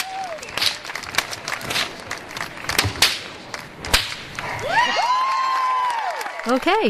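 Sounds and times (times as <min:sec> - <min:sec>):
whistles: 0:00.0 - 0:00.9
fire whip cracking: 0:00.0 - 0:02.0, 0:02.6 - 0:04.5
crowd cheering: 0:00.0 - 0:02.8, 0:03.5 - 0:06.8
noisy bustling crowd: 0:00.0 - 0:06.8
speech: 0:06.5 - 0:06.8.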